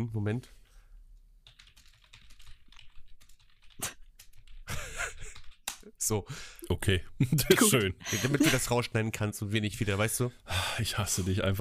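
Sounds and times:
speech: 0.0s - 0.6s, 5.8s - 11.5s
typing on a computer keyboard: 1.4s - 5.8s
laughter: 7.2s - 8.7s.

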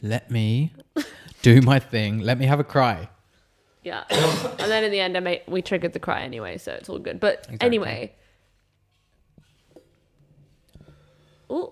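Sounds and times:
speech: 0.0s - 0.8s, 1.4s - 3.2s, 3.8s - 8.2s
person coughing: 4.1s - 4.9s.

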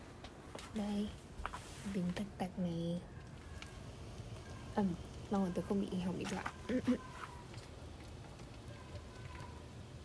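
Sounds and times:
crackling and bubbling of boiling pot: 0.0s - 10.0s
steam hissing from a boiling pot of bánh chưng in Hanoi: 0.6s - 10.0s
speech: 0.7s - 3.2s, 4.8s - 7.2s
rain in Hanoi: 1.7s - 10.0s.

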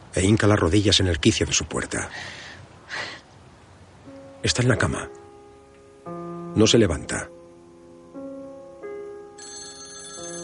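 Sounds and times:
speech: 0.2s - 3.1s, 4.4s - 5.2s, 6.6s - 7.4s
electronic telephone ringtone ringing unanswered: 9.4s - 10.4s.

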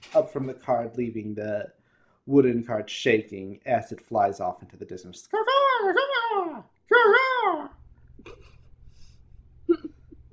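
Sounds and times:
speech: 0.1s - 8.5s
human voice imitating a griffin with shrill wavering screeches: 5.3s - 7.8s
low steady hum: 7.7s - 10.3s.

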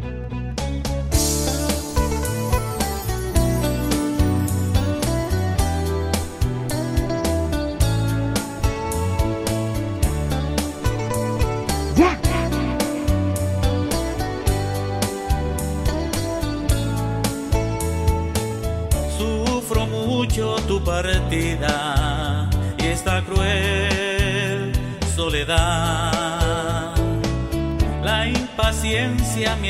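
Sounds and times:
bass: 0.0s - 29.6s
recorded song by a Nicaraguan band with driving beat: 0.9s - 29.6s
guitar solo: 1.2s - 18.3s.

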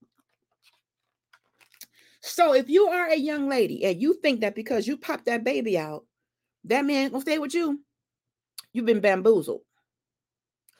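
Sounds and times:
person sipping water: 0.0s - 2.1s
speech: 2.3s - 7.9s, 8.7s - 9.7s.

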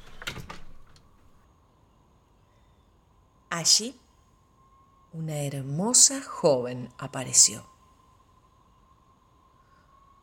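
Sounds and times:
wooden cabin door bursting open: 0.0s - 1.0s
soft rattle of wooden door: 0.0s - 1.3s
speech: 3.6s - 4.0s, 5.2s - 7.8s.

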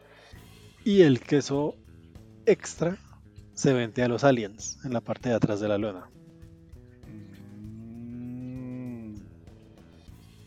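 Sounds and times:
speech: 0.8s - 1.8s, 2.4s - 3.0s, 3.6s - 6.2s
cow mooing: 7.1s - 9.3s.

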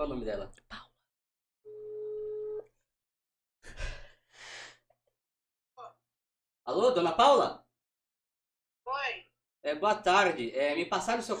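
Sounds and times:
speech: 0.0s - 0.7s, 6.7s - 7.6s, 8.9s - 11.3s
telephone tone over speakerphone during a call: 1.7s - 2.6s.

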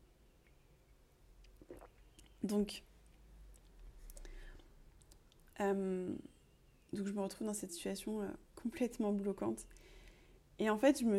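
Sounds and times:
sipping hot rose herbal tea: 1.6s - 2.3s
speech: 2.4s - 2.9s, 5.6s - 6.3s, 6.9s - 9.9s, 10.6s - 11.1s.

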